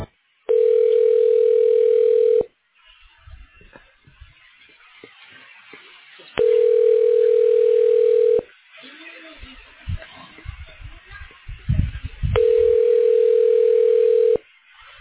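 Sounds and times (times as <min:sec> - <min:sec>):
telephone tones while a call is being transferred: 0:00.5 - 0:02.5, 0:06.4 - 0:08.5, 0:12.4 - 0:14.4.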